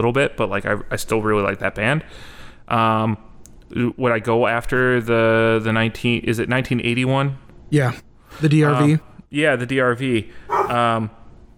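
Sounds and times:
speech: 0.0s - 11.2s
dog barking: 10.5s - 10.8s.

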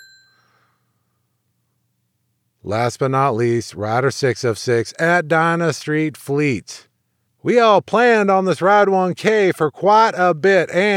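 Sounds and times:
bright high bell ringing: 0.0s - 0.6s
speech: 2.6s - 10.9s.

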